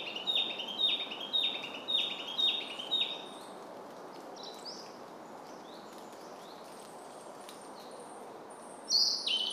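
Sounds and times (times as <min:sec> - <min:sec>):
Narcissus flycatcher song of whistled down-slurred notes: 0:00.0 - 0:03.4, 0:08.9 - 0:09.5.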